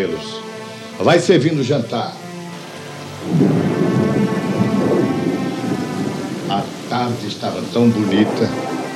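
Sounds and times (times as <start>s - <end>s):
steady rain pouring: 0.0s - 8.9s
speech: 1.0s - 2.2s, 3.2s - 3.7s, 6.6s - 8.7s
deep rolling thunder: 3.0s - 8.9s.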